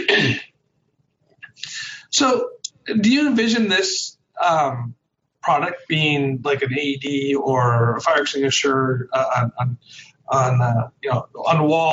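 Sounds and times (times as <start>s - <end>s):
harsh loud cough: 0.0s - 0.4s
faint small noise: 0.0s - 11.9s
speech: 2.2s - 11.9s.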